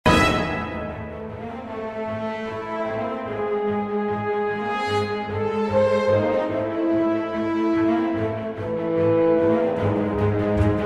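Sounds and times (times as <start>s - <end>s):
epic orchestral music with reverb: 0.0s - 10.8s.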